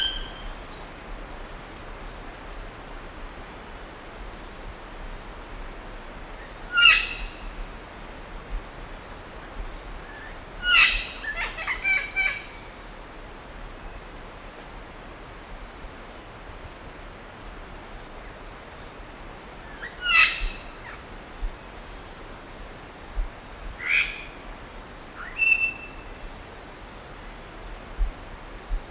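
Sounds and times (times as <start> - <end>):
steady hiss: 0.0 - 28.8
Imperial amazon harsh squawks: 10.6 - 12.4.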